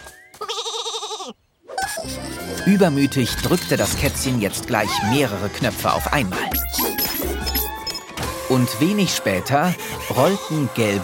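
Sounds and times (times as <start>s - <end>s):
sheep bleating near a wool-shearing machine: 0.4s - 1.3s
speech: 2.0s - 6.9s, 8.5s - 11.0s.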